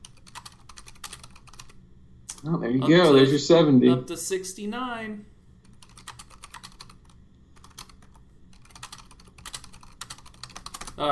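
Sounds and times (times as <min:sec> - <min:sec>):
rapid typing on a computer keyboard: 0:00.0 - 0:01.8, 0:05.7 - 0:11.0
speech: 0:02.4 - 0:05.3.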